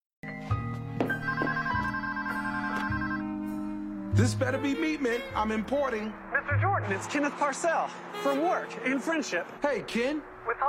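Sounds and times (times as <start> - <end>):
telephone ringing at a home: 1.1 - 3.5
speech: 4.2 - 10.6.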